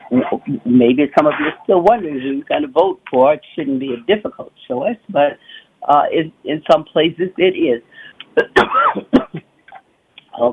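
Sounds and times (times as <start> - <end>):
speech: 0.1 - 9.5, 10.4 - 10.5
harsh rasping coughs: 8.4 - 9.4.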